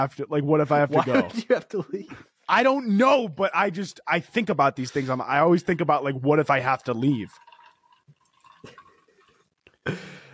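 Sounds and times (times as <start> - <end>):
speech: 0.0 - 7.5, 9.8 - 10.2
liquor pouring from a bottle into a glass: 6.4 - 9.8.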